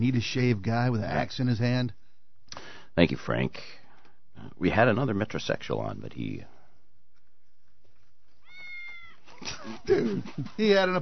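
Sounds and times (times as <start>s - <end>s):
speech: 0.0s - 3.8s, 4.4s - 6.5s, 9.4s - 11.0s
cat meowing: 8.4s - 9.4s.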